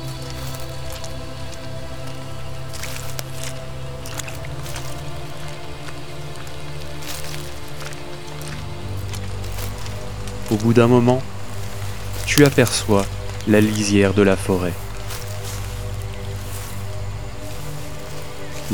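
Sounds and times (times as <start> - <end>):
footsteps squelching on a muddy forest path: 0.0 - 18.7
rain pattering on the ground: 0.0 - 18.7
speech: 10.5 - 11.3, 12.4 - 14.8.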